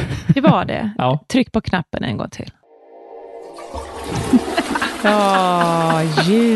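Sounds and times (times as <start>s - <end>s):
speech: 0.4s - 2.6s, 3.6s - 6.5s
toilet flushing: 3.4s - 6.5s
laughter: 4.2s - 6.5s.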